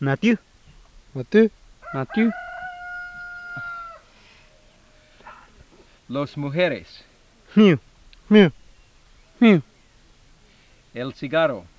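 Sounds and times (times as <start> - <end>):
speech: 0.0 - 0.5, 1.2 - 2.4, 6.1 - 8.6, 9.4 - 9.7, 10.9 - 11.7
noise: 0.0 - 11.7
rooster crowing: 1.6 - 5.8.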